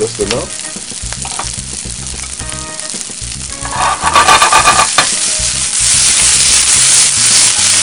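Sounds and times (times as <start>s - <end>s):
vegetables sizzling while frying in a hot pan: 0.0s - 7.8s
scraping stirring sounds in a pan: 3.5s - 5.2s.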